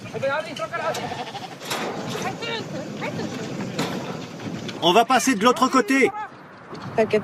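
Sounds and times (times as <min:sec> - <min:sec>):
busy outdoor background: 0:00.0 - 0:07.2
speech: 0:00.1 - 0:03.6, 0:04.8 - 0:06.3, 0:07.0 - 0:07.2
flock of sheep bleating while driven down from mountain pastures: 0:00.7 - 0:01.6.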